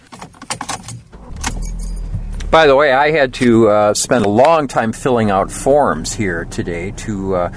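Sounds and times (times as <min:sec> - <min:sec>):
car keys jangling: 0:00.0 - 0:02.5
car engine cranking and starting into a low rumble: 0:00.0 - 0:07.5
speech: 0:02.5 - 0:07.5.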